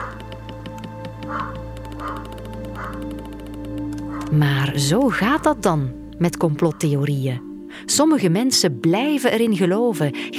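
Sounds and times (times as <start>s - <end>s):
dogs barking: 0.0s - 0.4s, 1.1s - 4.5s
speech: 4.3s - 10.3s.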